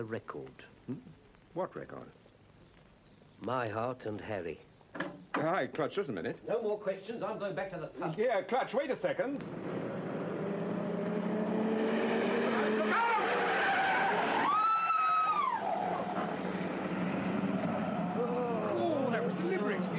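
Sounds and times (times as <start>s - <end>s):
speech: 0.0s - 2.2s, 3.4s - 9.7s
car engine roaring past at speed: 9.4s - 19.9s
car tyres squealing in a long skid round a corner: 12.4s - 19.9s.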